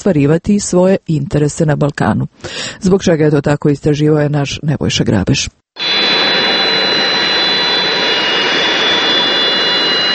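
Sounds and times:
speech: 0:00.0 - 0:05.6
Beriev Be-200 amphibious jet aircraft jet engine roar while landing at Niš airport in Serbia: 0:05.8 - 0:10.1
high whine of Beriev Be-200 amphibious jet aircraft: 0:05.8 - 0:10.1.

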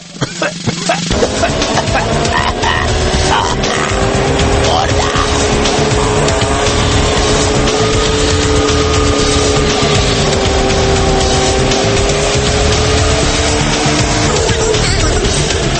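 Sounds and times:
laughter: 0:00.2 - 0:05.3
car driving past with engine roaring: 0:01.1 - 0:15.7.

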